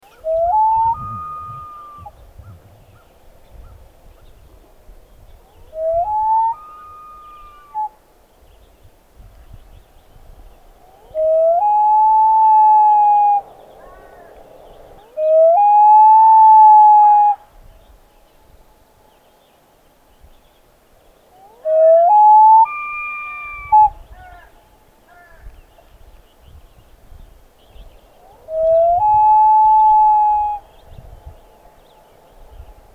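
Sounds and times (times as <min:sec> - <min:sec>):
loon bird call on a lake while kayaking: 0:00.0 - 0:03.8, 0:05.4 - 0:08.0, 0:10.8 - 0:17.5, 0:21.3 - 0:25.5, 0:28.2 - 0:30.9.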